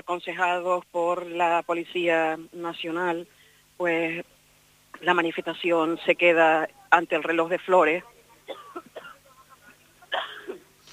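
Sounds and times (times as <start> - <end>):
speech: 0.1 - 4.4, 5.0 - 8.6
short coughing fit: 8.5 - 9.3, 10.0 - 10.7.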